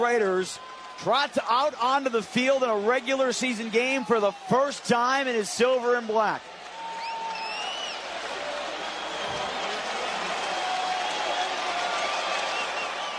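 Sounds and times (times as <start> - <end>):
speech: 0.0 - 6.6
large stadium crowd roaring and cheering: 0.0 - 13.1
stadium crowd applause: 0.0 - 13.1
whistles in a stadium crowd: 6.8 - 8.0, 8.8 - 9.8, 10.5 - 13.1.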